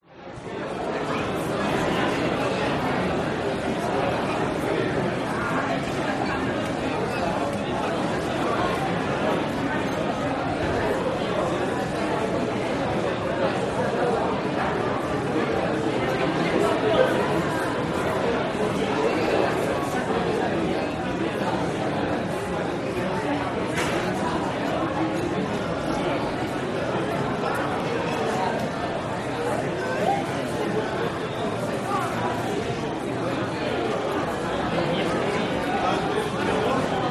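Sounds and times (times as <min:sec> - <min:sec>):
lively street dining chatter in Strasbourg France: 0:00.3 - 0:37.0.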